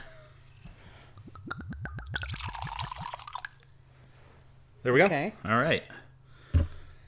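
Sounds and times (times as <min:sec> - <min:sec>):
gin glugging from a new bottle into a glass: 0:01.2 - 0:03.6
speech: 0:04.8 - 0:06.0.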